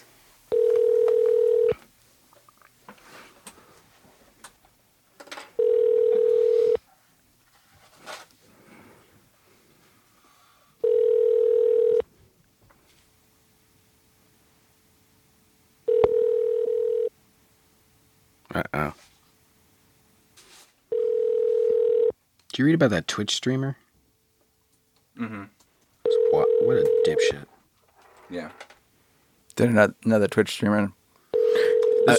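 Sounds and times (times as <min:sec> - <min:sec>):
phone line ringing tone on an outgoing call: 0:00.5 - 0:01.8, 0:05.6 - 0:06.8, 0:10.8 - 0:12.0, 0:15.9 - 0:17.1, 0:20.9 - 0:22.1, 0:26.0 - 0:27.4, 0:31.3 - 0:32.1
speech: 0:22.6 - 0:23.8, 0:29.6 - 0:31.0.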